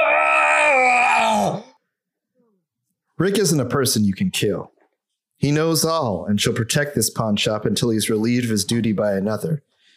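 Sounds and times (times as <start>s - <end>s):
strained yell-like pained groan: 0.0s - 1.8s
speech: 3.2s - 4.8s, 5.4s - 9.7s.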